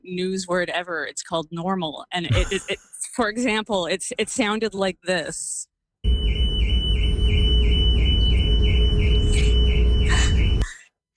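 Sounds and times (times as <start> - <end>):
speech: 0.0 - 6.4
car alarm blaring on ship deck: 6.0 - 10.6.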